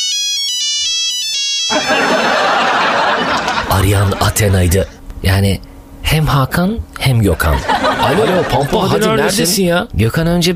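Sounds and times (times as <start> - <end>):
mobile phone melodic ringtone: 0.0 - 2.6
speech: 1.7 - 2.4, 3.9 - 10.5
laughter: 1.7 - 5.0, 7.4 - 9.6.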